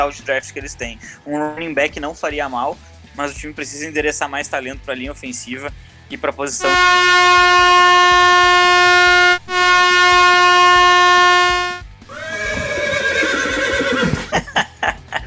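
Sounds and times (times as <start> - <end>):
speech: 0.0 - 8.4
loud sustained air horn blasts: 6.6 - 11.9
horse whinnying: 12.1 - 14.3
horse hooves clopping: 12.1 - 14.4
laughter: 13.9 - 15.2.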